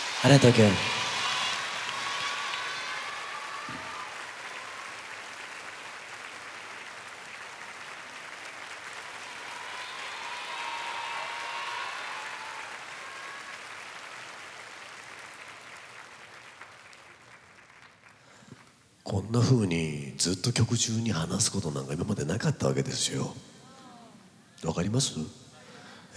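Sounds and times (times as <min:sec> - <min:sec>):
audience applause: 0:00.0 - 0:18.4
speech: 0:00.2 - 0:01.0, 0:19.4 - 0:23.5, 0:24.6 - 0:25.4.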